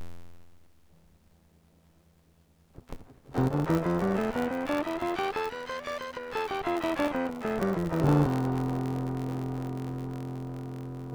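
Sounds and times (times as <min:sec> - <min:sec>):
distorted C scale: 0:03.4 - 0:11.1.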